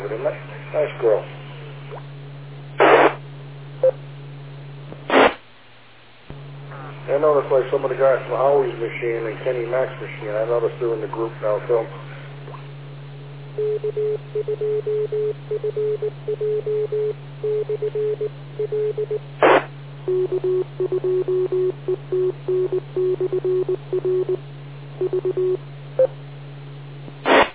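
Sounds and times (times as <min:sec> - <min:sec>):
constant low hum: 0:00.0 - 0:27.5
speech: 0:00.2 - 0:01.4, 0:07.1 - 0:12.1, 0:13.6 - 0:26.2
Morse code repeater identification tones on a radio channel: 0:13.6 - 0:19.2, 0:20.1 - 0:24.4, 0:25.0 - 0:26.1.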